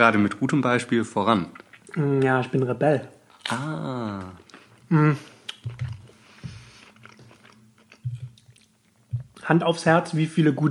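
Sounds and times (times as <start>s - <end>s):
speech: 0.0s - 5.9s, 9.5s - 10.6s
chewing and biting crunchy moist food: 1.5s - 2.4s, 5.5s - 9.4s.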